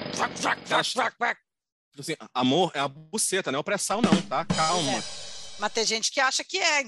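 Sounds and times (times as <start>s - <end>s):
voice imitating a drilling machine engine: 0.2s - 1.2s
speech: 0.2s - 6.8s.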